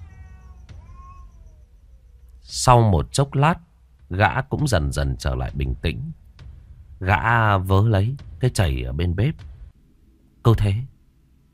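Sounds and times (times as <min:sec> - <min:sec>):
crazed cat meowing indoors: 0:00.0 - 0:02.3
low rumbling background: 0:00.0 - 0:11.5
speech: 0:02.5 - 0:06.2, 0:07.0 - 0:09.5, 0:10.4 - 0:10.9.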